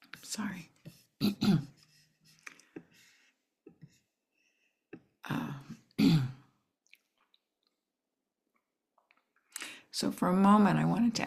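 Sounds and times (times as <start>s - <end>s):
speech: 0.3s - 0.7s, 10.3s - 11.2s
person clearing their throat: 1.2s - 1.8s, 5.7s - 6.5s
person coughing: 1.2s - 1.8s, 6.0s - 6.5s.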